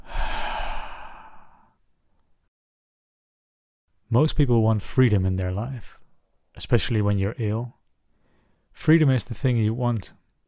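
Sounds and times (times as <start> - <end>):
deep exhale during a guided relaxation exercise: 0.0 - 1.8
speech: 4.1 - 6.0, 6.6 - 7.8, 8.8 - 10.2.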